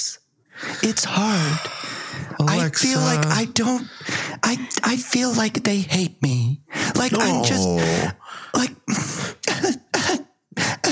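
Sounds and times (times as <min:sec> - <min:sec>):
speech: 0:00.8 - 0:01.8, 0:02.4 - 0:09.8
harsh chesty coughs: 0:08.9 - 0:10.9.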